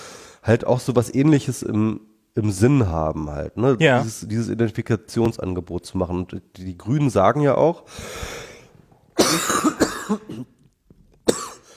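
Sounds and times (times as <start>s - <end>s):
speech: 0.5s - 8.5s, 9.2s - 10.5s
person coughing in a coughing fit: 9.2s - 10.6s, 11.2s - 11.7s.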